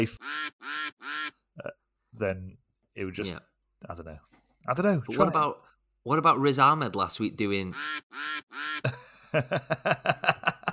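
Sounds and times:
duck quacking: 0:00.0 - 0:01.4, 0:07.7 - 0:08.9
speech: 0:00.0 - 0:10.7
laughter: 0:08.9 - 0:10.7.

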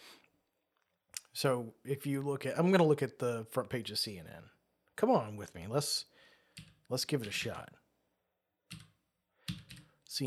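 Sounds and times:
speech: 0:01.4 - 0:07.8
quick computer keyboard typing: 0:06.5 - 0:07.6, 0:08.7 - 0:10.0.

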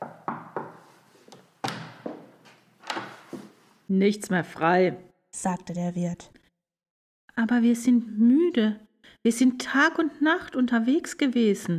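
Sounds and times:
knocking on a wooden door: 0:00.0 - 0:00.8
speech: 0:03.9 - 0:06.4, 0:07.4 - 0:11.7.

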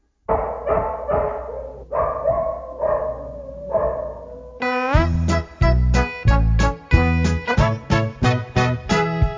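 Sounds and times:
dog barking loudly: 0:00.3 - 0:04.4
bright bouncy music with a strong beat: 0:04.9 - 0:09.3.

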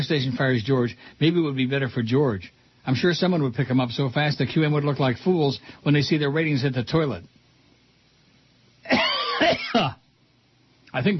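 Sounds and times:
speech: 0:00.0 - 0:07.3, 0:10.9 - 0:11.1
person coughing from a bacon bit stuck in the throat: 0:08.8 - 0:10.0
throat clearing from a bacon bit stuck in the throat: 0:08.9 - 0:10.0.

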